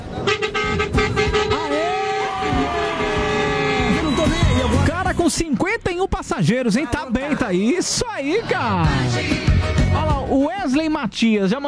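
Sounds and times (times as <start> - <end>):
bus horn honking: 0.0 - 5.0
speech: 5.3 - 11.6.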